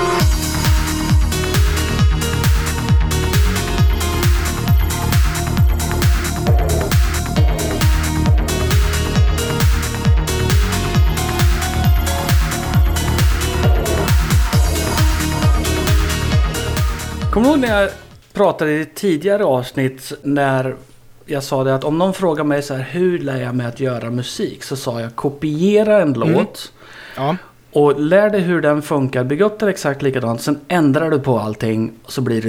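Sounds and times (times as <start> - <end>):
driving electronic music track with punchy kicks, synths and hi-hats: 0.0 - 18.3, 26.2 - 26.5
speech: 17.5 - 32.4.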